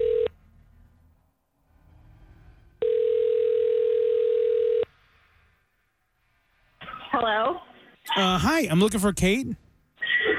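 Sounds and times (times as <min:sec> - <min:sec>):
telephone dial tone: 0:00.0 - 0:00.3, 0:02.8 - 0:04.9
speech: 0:08.2 - 0:09.6.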